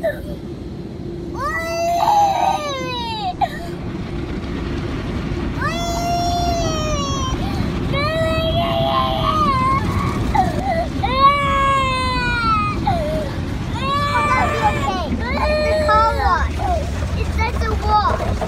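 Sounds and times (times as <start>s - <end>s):
rushing whooshing roar of a drive-through car wash: 0.0s - 18.4s
toddler girl crying and wailing: 1.4s - 3.8s, 5.6s - 16.9s.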